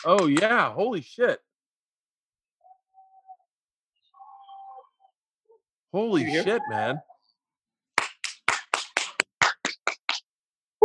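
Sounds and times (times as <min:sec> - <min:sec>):
people clapping from rooftops: 0:00.0 - 0:00.6, 0:08.0 - 0:10.3
speech: 0:00.0 - 0:01.5, 0:05.9 - 0:07.1.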